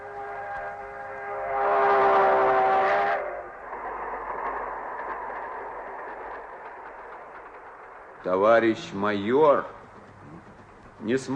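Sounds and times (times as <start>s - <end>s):
long steady train whistle: 0.0s - 3.6s
rumble and clatter of passing train cars: 0.0s - 11.3s
speech: 8.3s - 9.8s, 11.0s - 11.3s.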